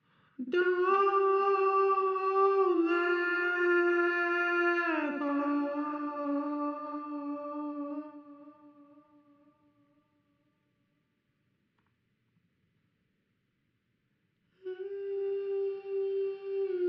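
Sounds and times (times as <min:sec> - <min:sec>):
a cappella jazz vocals in G minor: 0:00.4 - 0:09.5, 0:14.6 - 0:16.8.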